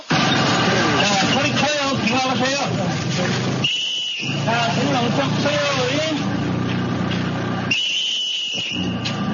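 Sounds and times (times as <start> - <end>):
loud dense rumbling noise: 0.1 - 7.7
sharp shrill whistle blast: 3.6 - 4.6, 7.7 - 9.2.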